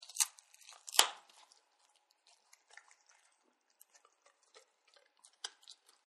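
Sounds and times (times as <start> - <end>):
dogs crunching bone: 0.0 - 6.0.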